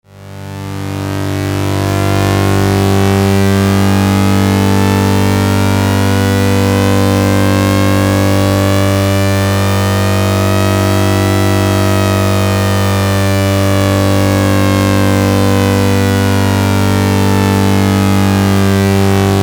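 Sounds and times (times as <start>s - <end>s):
dual TH4046 VCO modular synthesizer oscillators: 0.1s - 19.4s.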